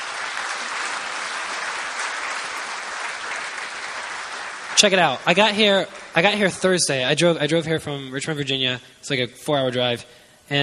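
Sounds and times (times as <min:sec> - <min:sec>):
audience applause at a live performance: 0:00.0 - 0:06.8
speech: 0:04.8 - 0:10.6.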